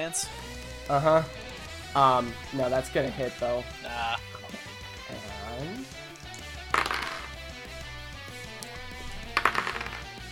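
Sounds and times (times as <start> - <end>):
speech: 0.0 - 6.0
large handful of dice rolled across a table: 6.7 - 7.4, 9.0 - 10.2.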